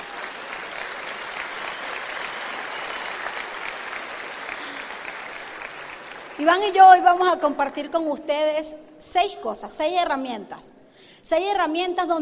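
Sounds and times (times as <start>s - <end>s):
audience applause: 0.0s - 6.8s
speech: 6.4s - 12.2s.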